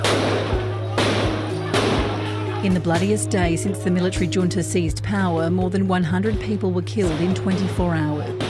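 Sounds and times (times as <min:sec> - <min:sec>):
sharp gunshots, moderately distant: 0:00.0 - 0:02.3
speech: 0:02.6 - 0:08.4.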